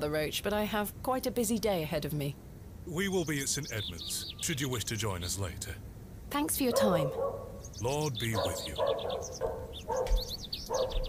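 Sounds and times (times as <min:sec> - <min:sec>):
low outdoor rumble: 0:00.0 - 0:10.7
speech: 0:00.0 - 0:11.0
birds chirping: 0:00.5 - 0:11.0
dog barking with short yelps: 0:06.6 - 0:07.6, 0:08.2 - 0:11.0.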